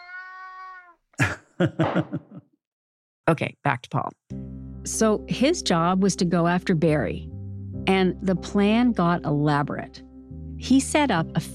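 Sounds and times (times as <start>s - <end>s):
male cat meowing loudly near the microphone: 0.0s - 1.0s
laughter: 1.2s - 2.4s
speech: 1.2s - 2.5s, 3.3s - 11.5s.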